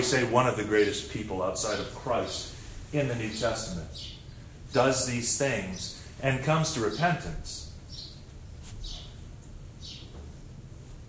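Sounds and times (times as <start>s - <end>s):
speech: 0.0s - 7.6s
bird chirping outside a window: 3.3s - 10.5s.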